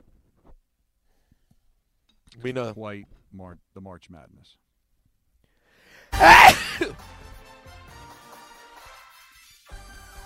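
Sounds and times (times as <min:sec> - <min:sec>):
speech: 0:02.4 - 0:04.7, 0:06.2 - 0:07.2
loud sneeze: 0:06.1 - 0:07.0.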